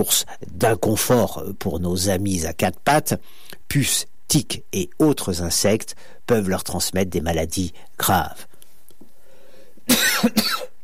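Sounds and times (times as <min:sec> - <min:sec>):
speech: 0:00.0 - 0:08.5, 0:09.9 - 0:10.7
person coughing: 0:09.9 - 0:10.8.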